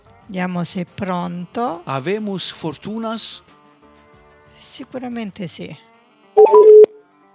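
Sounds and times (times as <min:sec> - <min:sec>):
speech: 0:00.3 - 0:03.5, 0:04.6 - 0:06.8
telephone handset touch-tone dialing beeps: 0:06.4 - 0:07.0.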